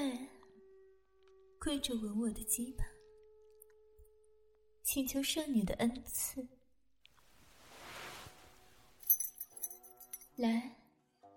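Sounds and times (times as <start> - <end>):
speech: 1.6 - 3.0, 4.9 - 6.6, 10.4 - 10.8
soft rustling: 7.3 - 10.2
keys jangling held between toes: 9.0 - 10.3.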